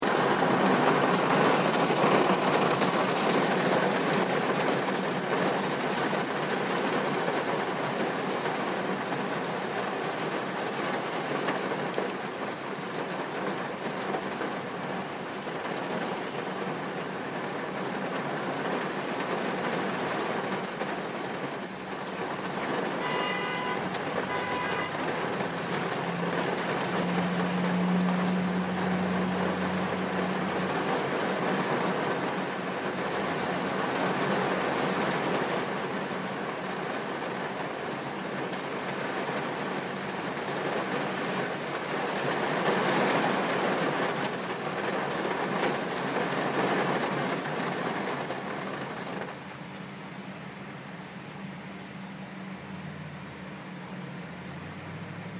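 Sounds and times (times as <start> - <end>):
rain after long time without any: 0.0 - 55.3.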